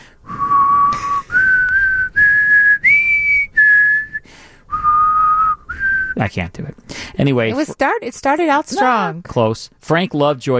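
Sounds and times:
person whistling a radio theme tune: 0.2 - 6.2
speech: 6.2 - 10.5.

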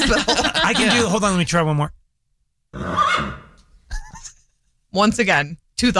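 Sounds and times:
laughter: 0.0 - 1.2
speech: 0.1 - 2.0, 4.9 - 5.9
person imitating a horse whinny: 2.7 - 3.6.

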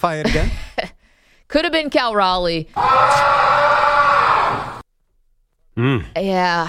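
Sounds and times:
speech: 0.0 - 3.4, 5.8 - 6.6
loud noisy roar: 2.8 - 4.8
man screaming in frustration: 2.8 - 4.8.

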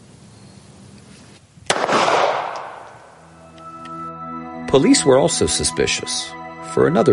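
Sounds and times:
handgun shot: 1.7 - 3.1
speech: 4.7 - 7.1.

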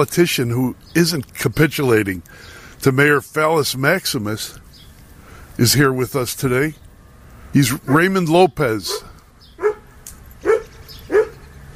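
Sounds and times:
speech: 0.0 - 4.6, 5.6 - 6.8, 7.5 - 9.1
faint noise: 0.0 - 11.7
dog barking: 8.8 - 11.4.

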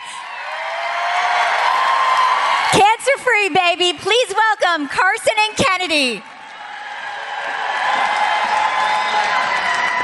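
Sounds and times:
large audience applauding: 0.1 - 4.2, 6.1 - 10.0
speech: 2.7 - 6.3.

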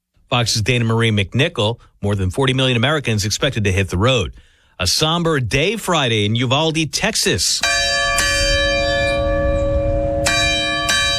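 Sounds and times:
speech: 0.3 - 7.9
deep church bell tolling in Uvalde Texas for shooting victims: 7.6 - 11.1.

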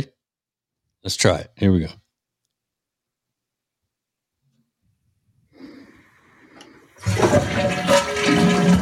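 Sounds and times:
speech: 1.0 - 2.0
toilet flushing: 6.2 - 8.8
toilet flush click: 6.6 - 8.8
low gurgle of toilet: 7.0 - 8.8.

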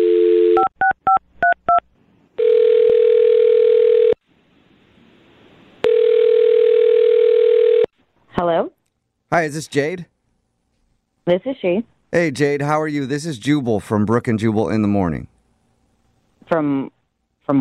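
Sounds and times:
phone line dial tone: 0.0 - 1.2, 2.4 - 4.2, 5.8 - 7.9
long electronic telephone ringing tones: 0.0 - 1.8, 2.4 - 4.2, 5.8 - 7.9
speech: 9.3 - 10.1, 11.3 - 15.3, 16.5 - 17.5.

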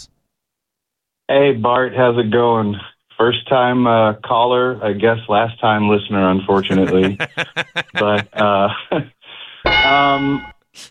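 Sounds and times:
speech: 1.3 - 10.8
laughter: 6.6 - 9.0
bell ring sound effect: 9.7 - 10.6.

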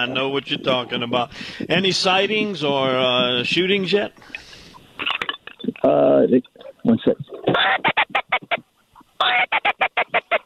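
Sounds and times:
speech: 0.0 - 4.4, 5.8 - 7.9
duck quacking heard from a hunting blind: 7.5 - 10.4.

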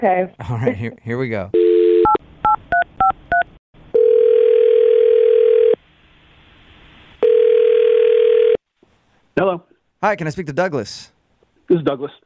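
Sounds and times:
speech: 0.0 - 1.6, 9.4 - 12.2
long steady telephone ring tones: 1.6 - 2.2, 3.9 - 5.8, 7.2 - 8.6.

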